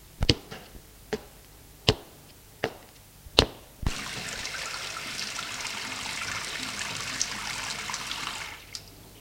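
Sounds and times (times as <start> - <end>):
tap gushing as a knife is washed: 3.9 - 8.9.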